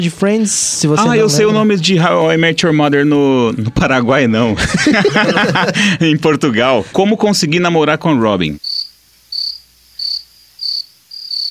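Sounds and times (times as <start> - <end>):
speech: 0.0 - 8.7
laughter: 1.0 - 1.9, 4.4 - 6.9
cricket chirping: 8.6 - 11.4.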